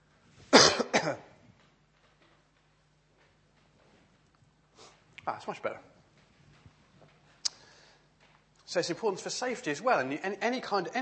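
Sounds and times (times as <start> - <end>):
person coughing from a tickly cough: 0.5 - 1.3
speech: 1.0 - 1.3, 5.3 - 6.0, 8.7 - 11.0.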